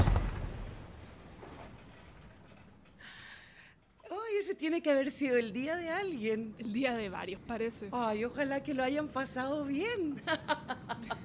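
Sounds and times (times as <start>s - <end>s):
distant explosion with long low rumble: 0.0s - 3.0s
speech: 4.5s - 11.1s
laughter: 10.0s - 11.2s.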